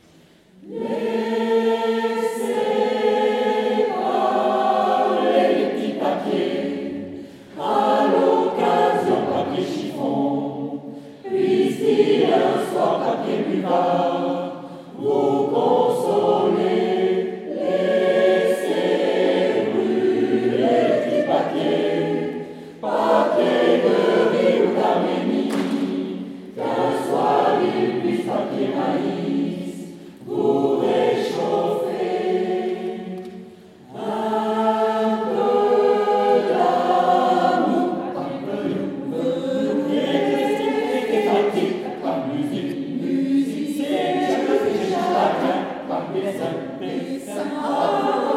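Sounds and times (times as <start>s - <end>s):
chorale: 0.0s - 48.3s.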